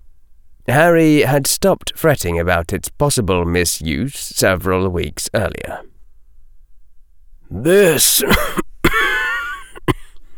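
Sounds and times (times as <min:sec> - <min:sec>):
speech: 0:00.7 - 0:05.9, 0:07.5 - 0:08.7
person giving a forced cough with a strained rasp: 0:07.6 - 0:10.1.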